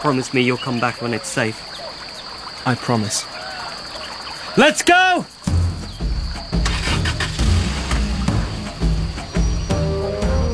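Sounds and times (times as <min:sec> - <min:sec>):
speech: 0:00.0 - 0:01.9, 0:02.6 - 0:03.4, 0:04.6 - 0:05.6
car starting and driving away: 0:05.5 - 0:10.5.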